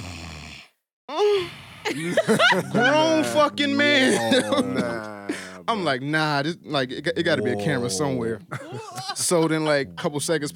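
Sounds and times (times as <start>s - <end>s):
voice imitating a sleeping man's loud snore: 0.0s - 0.7s, 4.1s - 5.7s, 7.3s - 8.4s
speech: 1.1s - 10.5s
laughter: 1.9s - 5.6s, 7.4s - 9.6s.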